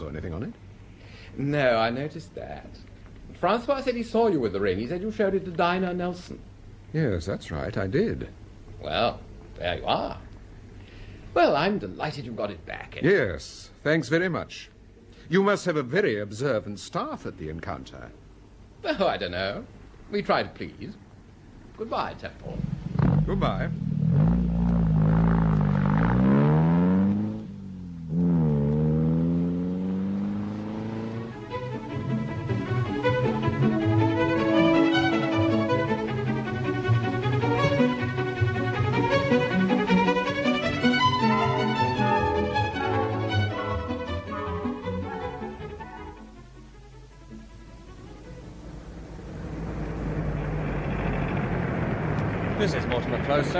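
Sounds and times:
speech: 0:00.1 - 0:00.7, 0:01.3 - 0:10.2, 0:11.4 - 0:14.7, 0:15.3 - 0:18.2, 0:18.8 - 0:21.0, 0:21.8 - 0:24.5
car engine revving and shifting while driving: 0:22.5 - 0:45.8, 0:47.4 - 0:53.5.

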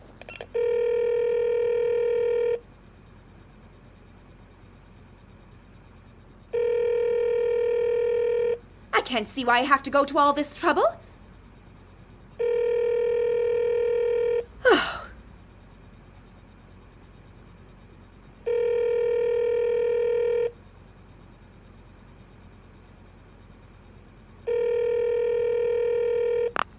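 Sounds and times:
telephone ringing tones on a call to a police department: 0:00.5 - 0:02.6, 0:06.5 - 0:08.6, 0:12.4 - 0:14.5, 0:18.5 - 0:20.5, 0:24.5 - 0:26.6
speech: 0:09.1 - 0:11.1.

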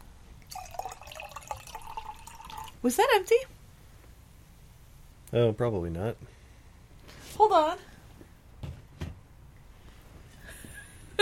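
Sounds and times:
beer poured from a bottle into a cup: 0:00.4 - 0:02.9
speech: 0:02.8 - 0:03.6, 0:05.3 - 0:06.4, 0:07.4 - 0:07.9.

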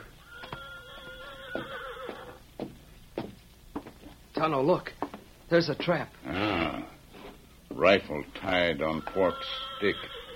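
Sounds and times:
horse neighing outside a house in town: 0:00.2 - 0:02.4, 0:06.2 - 0:07.0, 0:08.8 - 0:10.3
speech: 0:04.4 - 0:06.9, 0:07.8 - 0:10.1.

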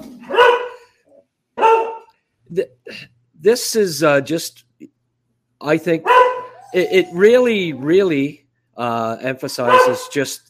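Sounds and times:
dog barking: 0:00.2 - 0:00.9, 0:01.6 - 0:02.1, 0:06.0 - 0:06.9, 0:09.6 - 0:10.3
speech: 0:02.5 - 0:04.7, 0:05.6 - 0:10.4.

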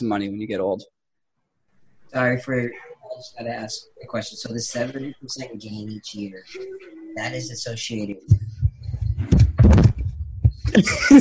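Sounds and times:
speech: 0:00.0 - 0:01.0, 0:02.1 - 0:08.5, 0:10.7 - 0:11.1
microphone being knocked over: 0:08.3 - 0:10.8
laughter: 0:10.7 - 0:11.1.

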